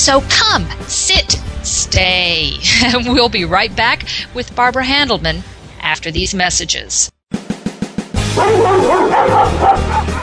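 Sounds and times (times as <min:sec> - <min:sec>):
speech: 0:00.0 - 0:07.2, 0:08.4 - 0:10.2
laughter: 0:02.6 - 0:03.3
single dog barking: 0:08.4 - 0:10.2.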